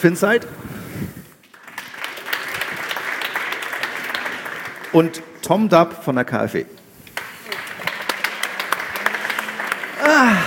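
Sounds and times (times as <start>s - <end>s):
speech: 0.0s - 1.1s, 5.0s - 6.8s
audience applause: 1.4s - 5.2s, 7.2s - 10.4s.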